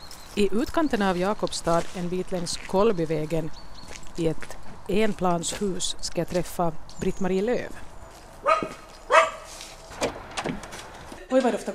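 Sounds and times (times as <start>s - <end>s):
speech: 0.4s - 7.9s, 11.3s - 11.7s
small dog barking at a visitor at a single-storey house: 8.4s - 9.5s.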